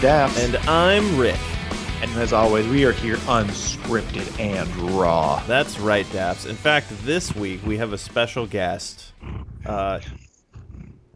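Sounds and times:
speech: 0:00.0 - 0:10.2
domestic cat purring against the microphone: 0:00.0 - 0:11.1.

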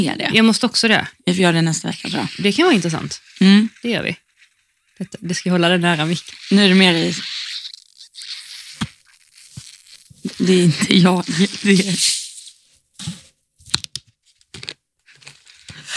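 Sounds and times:
speech: 0:00.0 - 0:04.2, 0:05.0 - 0:07.4, 0:10.2 - 0:12.2
julmust soda fizzing and bubbling while being poured: 0:05.9 - 0:12.2.

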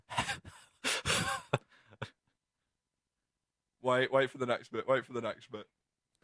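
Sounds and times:
man breathing heavily and raggedly: 0:00.2 - 0:02.0
speech: 0:03.9 - 0:06.2.

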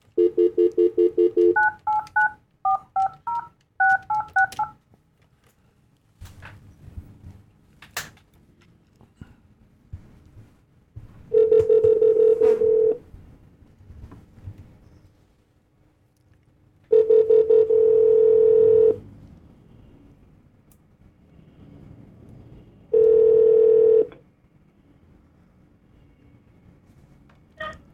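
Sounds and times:
long loud telephone ringback tones: 0:00.2 - 0:04.8, 0:11.3 - 0:13.0, 0:16.9 - 0:19.0, 0:22.9 - 0:24.2
telephone keypad beeps: 0:00.2 - 0:04.8, 0:11.4 - 0:13.0, 0:23.0 - 0:24.1.

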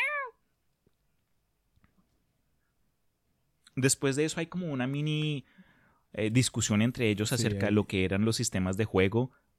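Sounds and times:
cat meowing: 0:00.0 - 0:00.4
speech: 0:03.8 - 0:09.4.

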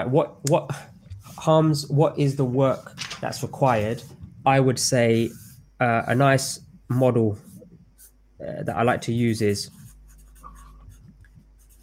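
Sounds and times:
speech: 0:00.0 - 0:07.5, 0:08.4 - 0:09.8
low steady noise: 0:00.0 - 0:11.8
pen or pencil scratching on a sheet of paper: 0:05.2 - 0:06.5, 0:09.6 - 0:11.8.

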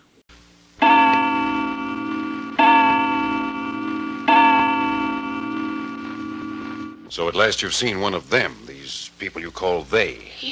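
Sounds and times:
clock chime: 0:00.8 - 0:07.1
speech: 0:07.2 - 0:10.4.

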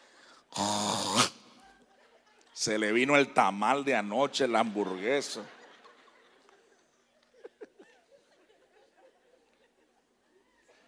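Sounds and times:
person imitating a throaty snore of someone with reflux: 0:00.5 - 0:01.4
laughter: 0:01.5 - 0:02.6, 0:04.5 - 0:10.8
speech: 0:02.6 - 0:05.6.

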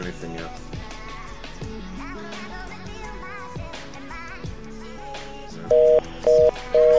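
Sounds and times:
electronic telephone dialing tones on a phone call: 0:05.7 - 0:06.9.

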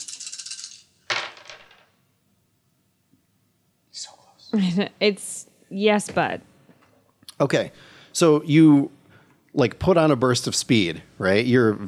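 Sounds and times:
three black dice rattling in a hand or cup: 0:00.0 - 0:01.8
speech: 0:04.5 - 0:06.5, 0:07.4 - 0:11.8.

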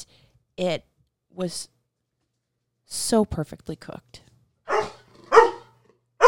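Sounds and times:
speech: 0:00.0 - 0:01.7, 0:02.9 - 0:04.3
dog barking: 0:04.7 - 0:06.2.

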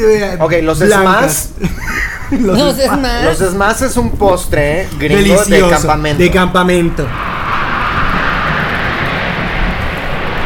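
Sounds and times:
speech: 0:00.0 - 0:07.3
airplane flying overhead: 0:07.1 - 0:10.4.

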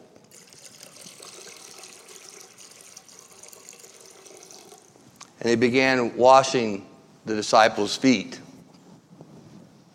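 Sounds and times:
water poured into a bowl: 0:00.2 - 0:05.0
speech: 0:05.4 - 0:08.4.

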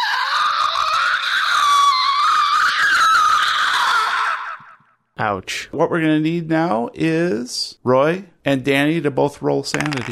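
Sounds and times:
person voicing a sustained piercing monster shriek: 0:00.0 - 0:04.9
speech: 0:05.2 - 0:10.1.

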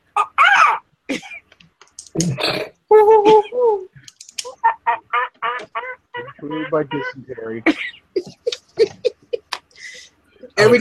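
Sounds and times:
forest birds squawking with quacking cries: 0:00.2 - 0:00.8, 0:04.4 - 0:09.0
speech: 0:02.2 - 0:02.7, 0:06.5 - 0:08.4, 0:10.6 - 0:10.7
laughter: 0:06.2 - 0:10.0.

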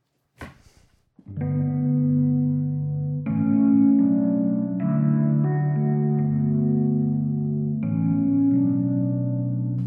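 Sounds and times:
instrument played through a reverb effect in sustained washy chords: 0:01.3 - 0:09.8.

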